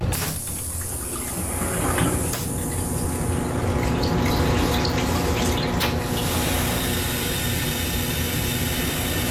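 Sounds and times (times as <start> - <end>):
train toilet flushing with rushing water and air: 0.0 - 9.2.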